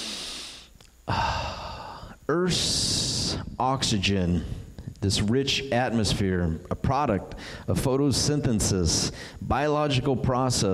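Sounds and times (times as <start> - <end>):
person taking a deep breath: 0.0 - 2.3, 7.3 - 7.7, 9.1 - 9.5
speech: 2.4 - 2.8, 3.6 - 10.7.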